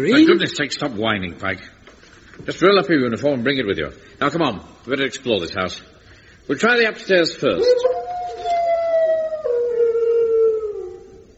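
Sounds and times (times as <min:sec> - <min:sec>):
speech: 0:00.0 - 0:01.8, 0:02.4 - 0:05.9, 0:06.5 - 0:08.0
dog howling: 0:07.6 - 0:11.3.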